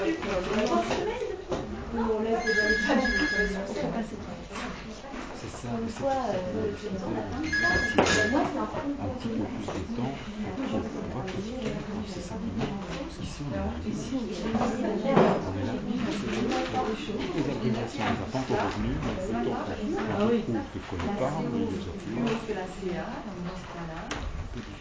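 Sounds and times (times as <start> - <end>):
continuous overlapping talk and chatter: 0.0 - 24.7
telephone ringing with short high trilling bursts: 2.4 - 3.8, 7.4 - 8.6.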